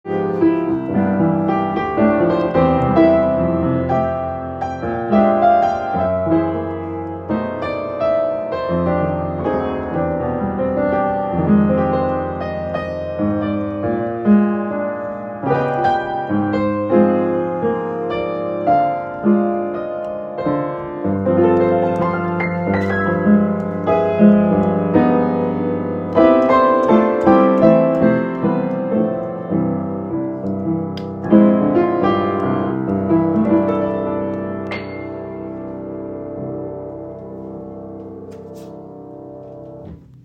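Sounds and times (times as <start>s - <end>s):
Grotrian-Steinweg Friedrich 111 upright piano in black polyester with silent system: 0.0s - 40.2s.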